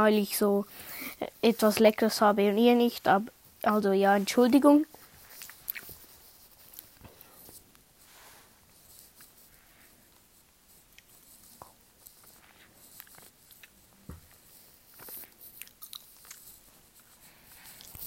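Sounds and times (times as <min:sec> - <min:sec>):
speech: 0:00.0 - 0:05.0
biting and chewing a sweet gummy snake: 0:15.0 - 0:16.6, 0:17.5 - 0:18.0.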